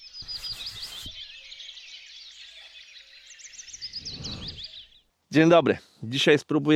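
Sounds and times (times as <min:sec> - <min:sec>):
several birds singing and chirping outdoors: 0:00.0 - 0:06.0
low rumbling gust: 0:03.8 - 0:04.9
speech: 0:05.3 - 0:06.7.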